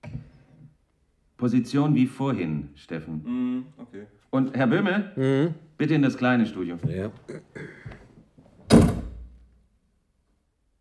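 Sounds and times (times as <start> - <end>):
speech: 1.4 - 8.0
door slamming shut on its own in a small radio-drama studio: 8.7 - 9.4.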